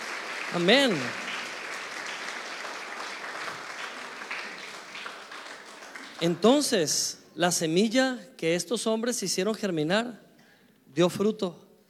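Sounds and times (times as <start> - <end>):
audience applauding: 0.0 - 6.7
speech: 0.5 - 1.2, 6.2 - 10.2, 10.9 - 11.6.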